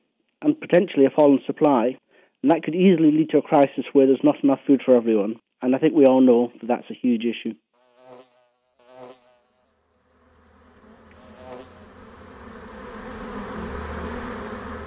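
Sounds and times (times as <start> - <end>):
speech: 0.4 - 7.6
dense continuous hum of buzzing bees: 7.8 - 14.8.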